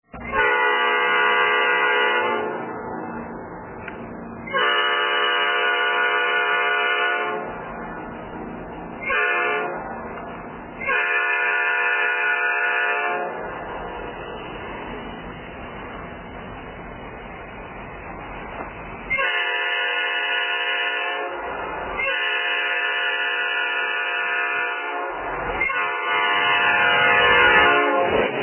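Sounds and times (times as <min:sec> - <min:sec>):
EMD GP38-2 locomotive Nathan P5A horn: 0:00.1 - 0:02.8, 0:04.4 - 0:07.6, 0:09.0 - 0:10.0, 0:10.8 - 0:13.5, 0:19.1 - 0:28.3.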